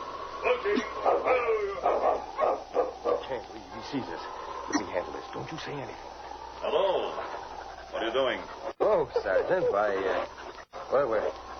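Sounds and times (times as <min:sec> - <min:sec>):
sled dog team barking and yipping: 0:00.0 - 0:11.5
speech: 0:00.6 - 0:02.6, 0:03.3 - 0:11.4.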